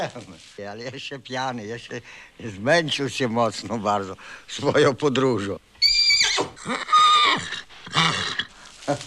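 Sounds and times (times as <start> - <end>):
speech: 0.0 - 8.3, 8.9 - 9.0
horse neighing: 5.8 - 8.5.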